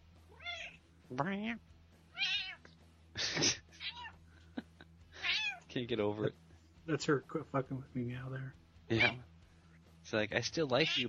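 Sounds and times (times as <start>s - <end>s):
female cat meowing: 0.4s - 0.8s, 2.1s - 2.7s, 3.8s - 4.2s, 5.2s - 5.7s, 8.9s - 9.2s, 10.8s - 11.0s
speech: 1.1s - 1.7s, 5.8s - 9.3s, 10.1s - 11.0s.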